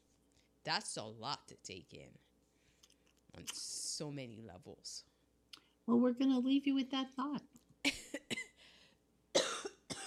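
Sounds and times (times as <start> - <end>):
speech: 0.7 - 2.3, 3.4 - 5.1, 5.9 - 7.5
person coughing: 7.9 - 8.7, 9.3 - 10.0.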